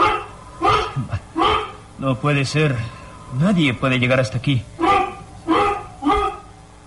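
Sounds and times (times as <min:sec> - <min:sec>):
dog barking and yelping: 0:00.0 - 0:01.8, 0:04.8 - 0:06.4
speech: 0:01.0 - 0:01.2, 0:02.0 - 0:04.9.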